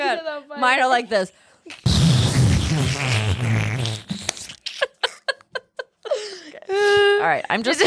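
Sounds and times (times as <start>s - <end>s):
speech: 0.1s - 2.1s, 6.7s - 7.8s
mouth imitation of a fart: 1.7s - 4.8s.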